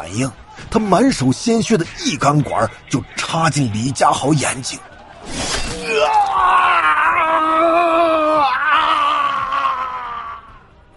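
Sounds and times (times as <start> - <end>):
speech: 0.0 - 5.4
man screaming in pain: 5.8 - 10.5.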